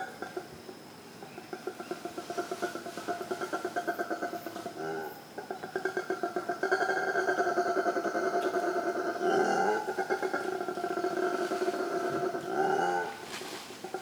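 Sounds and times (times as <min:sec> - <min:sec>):
howler monkey howls at Ilha Grande in Brazil: 0:01.7 - 0:14.0.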